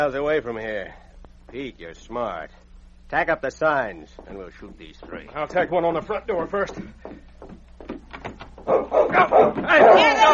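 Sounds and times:
speech: 0.0 - 7.3, 8.7 - 10.3
large dog barking as it charges: 8.7 - 10.3.

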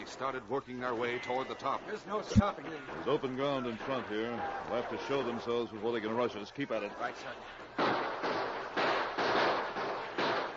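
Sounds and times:
speech: 0.1 - 7.7
gunfire bursts in a gunfight: 7.8 - 10.5.

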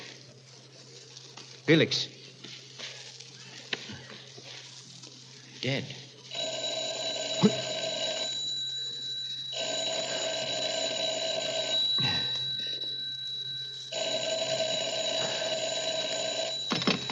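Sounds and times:
speech: 1.7 - 2.2, 5.6 - 6.0
telephone ringing: 6.3 - 17.1.

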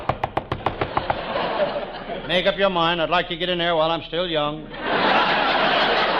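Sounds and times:
knocking on the door of a hideout: 0.0 - 1.2
laughter: 0.8 - 2.8, 4.6 - 6.1
speech: 2.3 - 5.8.

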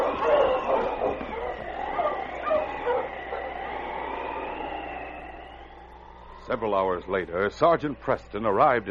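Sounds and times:
team of husky sled dogs barking and yipping: 0.0 - 5.6
speech: 6.5 - 8.8.

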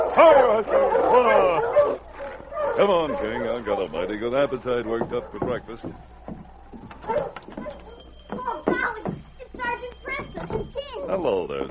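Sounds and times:
large dog barking excitedly while running ahead of a dog team: 0.0 - 5.9, 6.9 - 8.1
speech: 0.2 - 1.3, 2.8 - 6.2, 7.1 - 7.6, 11.1 - 11.6.

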